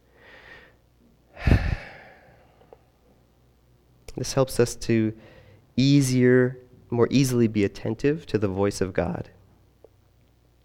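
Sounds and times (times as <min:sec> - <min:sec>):
deep breathing: 0:00.0 - 0:02.9, 0:05.2 - 0:05.7
speech: 0:04.2 - 0:09.4.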